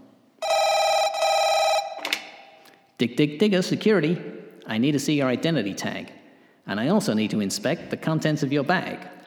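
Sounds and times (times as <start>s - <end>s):
telephone ringing with electronic trills in a building at night: 0.4s - 2.6s
speech: 3.0s - 9.2s.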